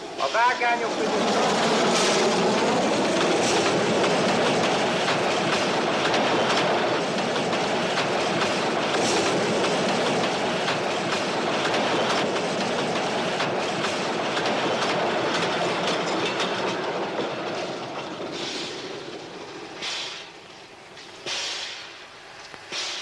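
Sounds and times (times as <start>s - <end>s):
fast train rushing through a station without stopping: 0.0s - 23.0s
train wheels clattering over rail joints: 0.0s - 23.0s
speech: 0.2s - 2.0s.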